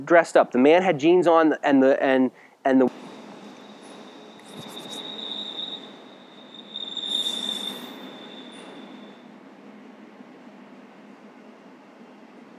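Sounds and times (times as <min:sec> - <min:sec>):
speech: 0:00.0 - 0:03.1
train wheels squealing: 0:02.9 - 0:09.2.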